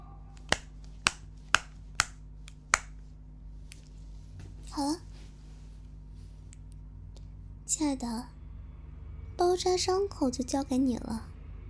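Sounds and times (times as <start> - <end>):
faint hum: 0.0 - 11.6
scissors snipping through something: 0.4 - 2.9
speech: 4.8 - 5.1, 7.7 - 8.4, 9.4 - 11.3.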